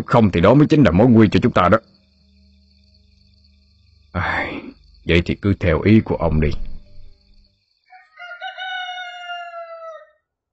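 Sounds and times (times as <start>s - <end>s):
speech: 0.1s - 2.0s, 4.2s - 4.4s, 5.1s - 6.7s
rooster crowing: 7.8s - 10.3s.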